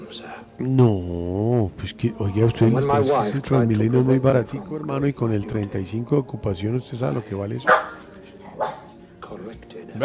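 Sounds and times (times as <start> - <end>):
speech: 0.1 - 8.0
dog barking in short sharp barks: 7.6 - 9.0.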